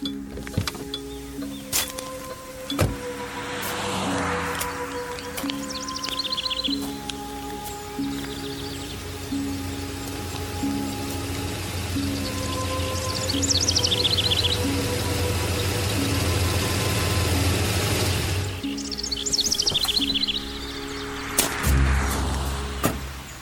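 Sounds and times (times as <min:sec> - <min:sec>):
clunks: 0:00.0 - 0:03.1
birds chirping: 0:00.0 - 0:23.4
heavy tow truck engine rumbling and idling: 0:00.0 - 0:23.4.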